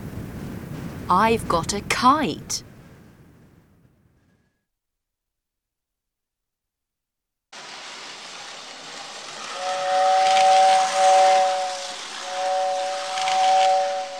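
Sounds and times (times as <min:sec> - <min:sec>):
speech: 0:01.1 - 0:02.7
rushing hiss of escaping steam: 0:07.6 - 0:14.1
steam train whistle blasts: 0:08.4 - 0:14.1.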